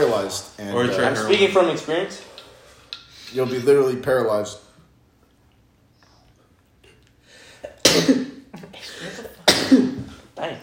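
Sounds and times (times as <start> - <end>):
speech: 0.0 - 2.4, 3.3 - 4.6
person sneezing: 7.6 - 10.3.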